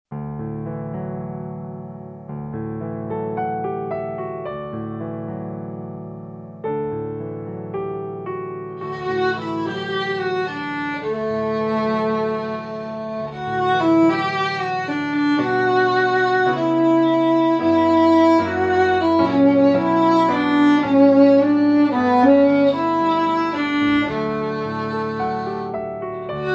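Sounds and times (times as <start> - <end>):
piano: 0.1 - 26.5
beginner violin: 8.7 - 26.5.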